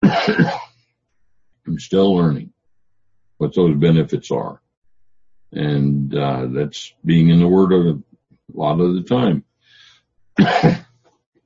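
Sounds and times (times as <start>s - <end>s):
person coughing: 0.0s - 0.8s, 10.4s - 11.0s
speech: 1.8s - 2.5s, 3.4s - 4.6s, 5.5s - 9.5s, 10.4s - 10.8s.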